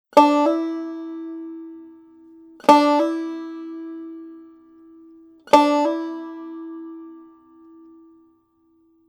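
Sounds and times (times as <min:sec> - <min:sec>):
hammer-on melody: 0:00.2 - 0:08.2.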